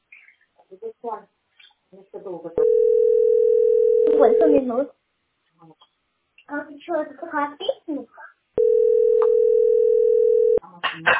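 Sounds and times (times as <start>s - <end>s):
speech: 0.7s - 5.0s, 5.6s - 5.8s, 6.5s - 8.2s, 11.0s - 11.1s
telephone dial tone: 2.6s - 4.4s, 8.6s - 10.6s.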